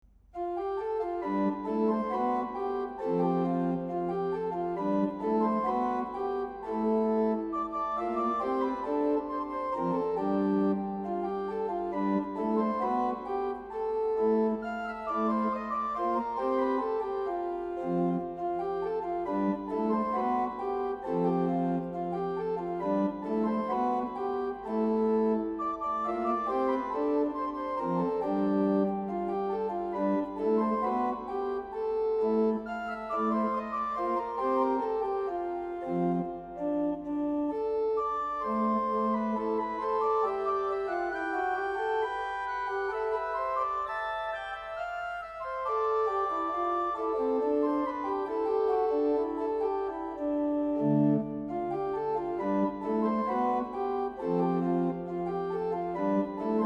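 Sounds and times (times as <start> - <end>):
organ: 0.6 - 56.6.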